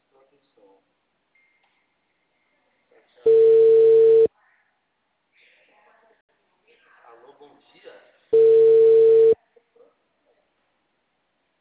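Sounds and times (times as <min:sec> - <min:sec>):
buzzy telephone line tone on a call to a number not answering: 0:03.3 - 0:04.3, 0:08.4 - 0:09.4.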